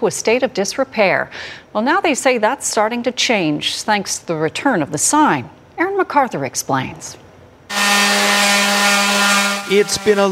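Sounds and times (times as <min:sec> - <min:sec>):
speech: 0:00.0 - 0:07.2, 0:09.7 - 0:10.2
power sander sanding a wooden community sign being refurbished: 0:07.7 - 0:10.2.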